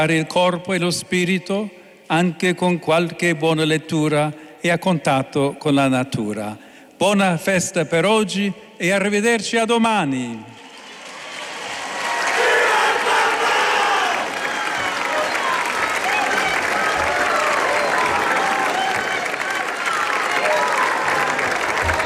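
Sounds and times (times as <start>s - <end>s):
speech: 0.0s - 10.6s
large outdoor crowd cheering and applauding in a town square: 10.6s - 22.0s.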